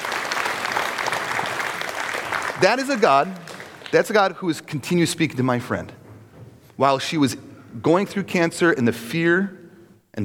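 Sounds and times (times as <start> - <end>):
audience applause: 0.0 - 4.4
speech: 2.6 - 6.0, 6.8 - 9.6.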